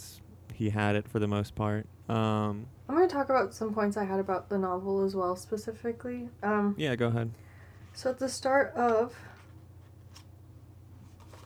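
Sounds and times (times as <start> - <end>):
steady low hum: 0.0 - 11.2
speech: 0.6 - 7.4, 8.0 - 9.3
paper crinkling: 11.0 - 11.4.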